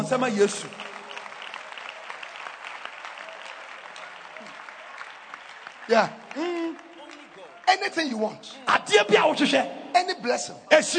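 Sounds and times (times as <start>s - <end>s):
speech: 0.0s - 0.9s, 5.9s - 6.5s, 7.8s - 10.9s
audience clapping hands: 0.0s - 8.2s.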